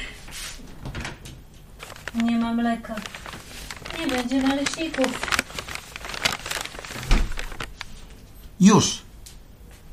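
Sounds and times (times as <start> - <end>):
speech: 2.2 - 3.2, 4.0 - 5.5, 8.6 - 9.0
kitchen refrigerator door pulled open: 7.0 - 7.4.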